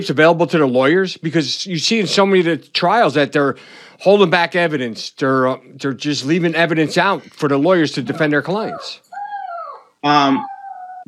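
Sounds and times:
speech: 0.0s - 9.0s, 10.0s - 10.5s
chihuahua howling and whining: 8.0s - 11.0s.

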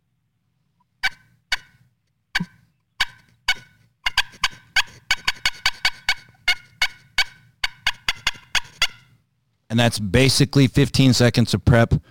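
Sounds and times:
hand-held turkey hen call yelping and cutting: 0.9s - 9.1s
speech: 9.7s - 12.0s.

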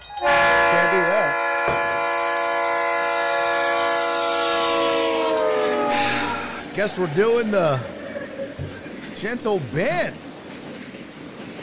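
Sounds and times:
rumble of a rolling train: 0.0s - 11.6s
train horn sound effect blaring: 0.2s - 7.1s
speech: 6.8s - 8.0s, 9.2s - 10.2s.

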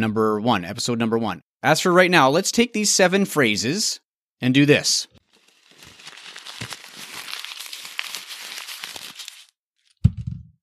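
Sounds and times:
speech: 0.0s - 5.2s
paper being crumpled: 5.2s - 10.0s.

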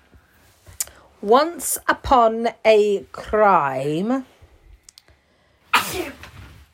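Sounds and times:
speech: 1.2s - 4.3s
loud sneeze: 5.7s - 6.4s.

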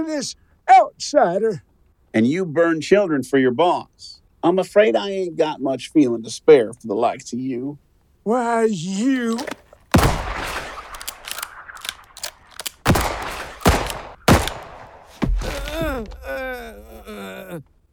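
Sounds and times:
speech: 0.0s - 0.4s, 1.0s - 9.6s, 16.0s - 17.7s
gunshots fired into a man's hands and kneecaps: 9.9s - 15.2s.

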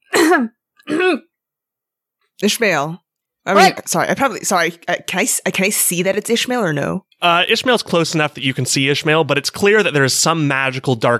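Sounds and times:
person performing throaty coughs: 0.0s - 1.3s
speech: 0.3s - 1.3s, 2.4s - 11.1s.

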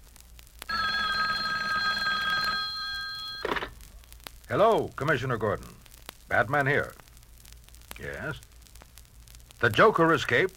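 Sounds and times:
hotline telephone bell ringing in a metallic trill: 0.7s - 3.7s
speech: 4.5s - 7.0s, 8.0s - 8.5s, 9.6s - 10.5s.

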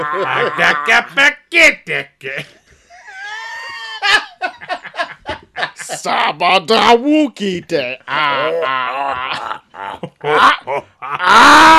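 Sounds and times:
man imitating a deep booming monster-like laugh: 0.0s - 1.2s, 2.2s - 6.3s, 8.1s - 11.7s
speech: 0.0s - 2.6s, 5.8s - 11.7s.

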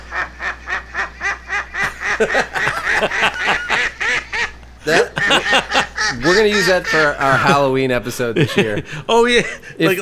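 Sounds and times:
duck quacking: 0.0s - 7.6s
laughter: 0.1s - 10.0s
speech: 2.2s - 3.7s, 4.8s - 10.0s.

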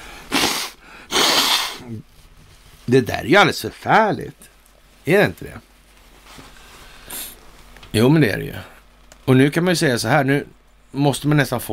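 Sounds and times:
person blowing their nose: 0.0s - 2.0s
speech: 1.9s - 2.2s, 2.9s - 5.7s, 7.9s - 8.7s, 9.3s - 11.7s.

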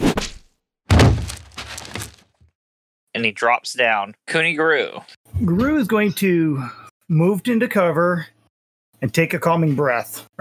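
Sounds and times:
heavy meaty thunk: 0.0s - 2.2s
arrow striking a body in the neck: 0.0s - 2.3s
speech: 3.2s - 8.4s, 9.0s - 10.3s.

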